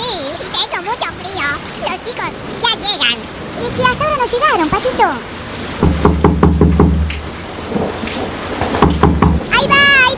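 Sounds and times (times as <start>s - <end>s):
steady heavy rain: 0.0s - 10.1s
loud deep thunder rumble with crackling pulses: 2.4s - 10.1s
speech: 4.3s - 5.9s.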